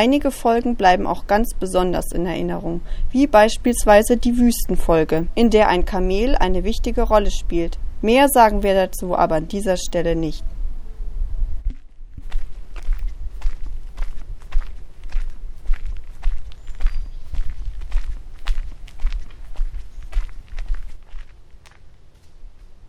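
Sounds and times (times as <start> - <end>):
speech: 0.0 - 10.5
footsteps crunching on forest ground while walking outdoors: 11.7 - 22.8.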